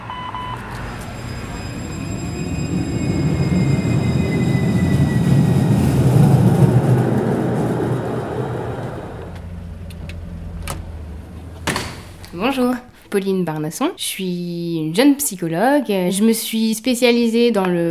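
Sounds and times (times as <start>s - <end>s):
tram rolling along rails: 0.0s - 14.1s
speech: 12.5s - 17.9s.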